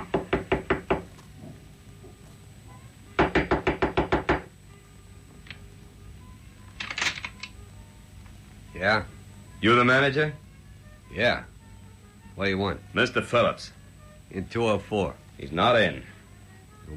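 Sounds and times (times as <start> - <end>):
knocking on a door: 0.0 - 1.1, 3.2 - 4.5
speech: 8.8 - 10.4, 11.1 - 11.5, 12.4 - 16.1.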